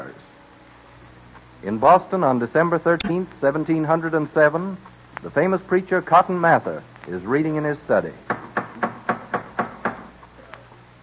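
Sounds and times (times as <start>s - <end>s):
speech: 1.6s - 8.4s
parishioners knocking on a wooden door in Boston: 8.3s - 10.1s.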